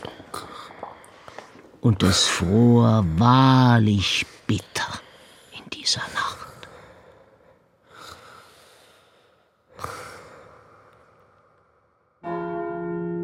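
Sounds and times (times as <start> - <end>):
speech: 1.8 - 4.9
church bell striking the hour: 12.2 - 13.2.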